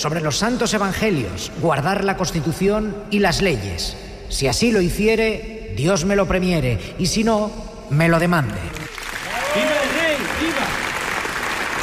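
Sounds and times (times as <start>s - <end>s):
speech: 0.0s - 8.9s
large crowd applauding in a standing ovation in the Palacio de las Cortes: 8.6s - 11.8s.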